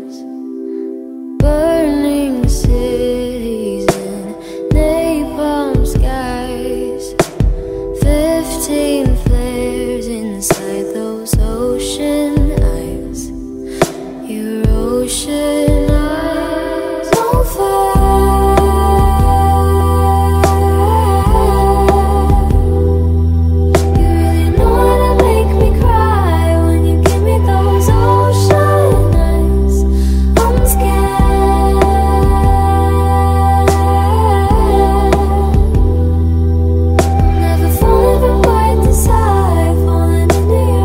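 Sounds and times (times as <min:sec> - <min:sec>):
dark trap beat: 0:01.4 - 0:40.8.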